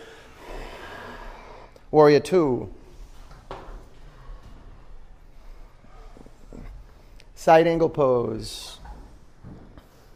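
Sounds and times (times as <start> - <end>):
long forceful exhale: 0.0 - 1.8
speech: 1.9 - 2.8, 7.4 - 8.8.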